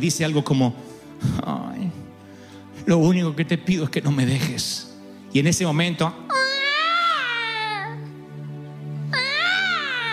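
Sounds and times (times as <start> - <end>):
speech: 0.0 - 1.8, 2.8 - 6.3
baby wailing: 6.3 - 8.2, 9.1 - 10.1.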